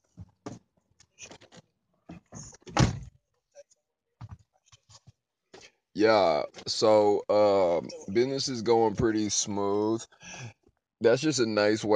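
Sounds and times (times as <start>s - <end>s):
door being pushed shut: 2.6s - 3.1s
speech: 6.0s - 11.9s.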